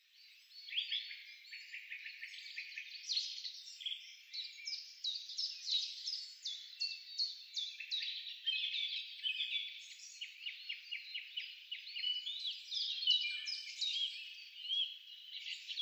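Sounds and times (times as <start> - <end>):
birds singing in a forest: 0.0 - 15.8.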